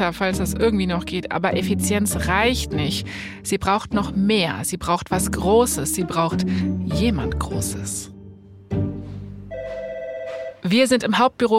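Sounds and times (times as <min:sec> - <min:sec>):
speech: 0:00.0 - 0:08.2, 0:10.6 - 0:11.5
telephone ringing in an office: 0:09.5 - 0:10.7.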